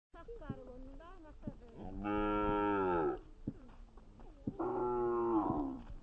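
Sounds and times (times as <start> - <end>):
cow mooing: 1.8 - 3.2, 4.6 - 5.8.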